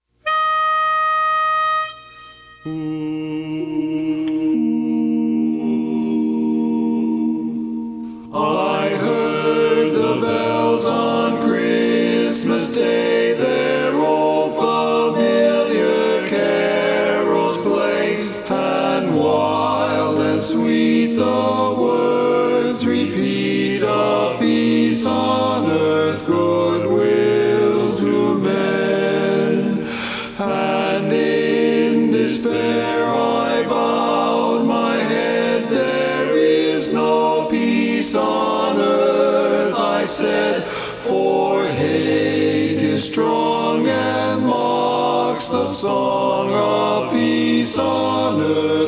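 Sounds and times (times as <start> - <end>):
baritone: 0.2 - 48.8.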